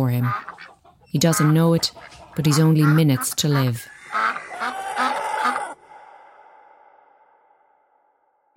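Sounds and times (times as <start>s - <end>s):
speech: 0.0s - 4.4s
geese honking: 0.0s - 5.8s
farmyard fowl squawking: 0.2s - 6.0s.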